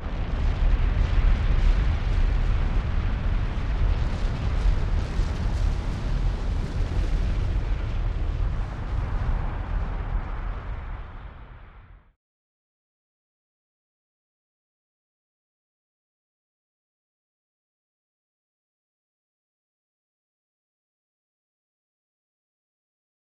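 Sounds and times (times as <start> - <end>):
volcano effect ambience: 0.0 - 12.2.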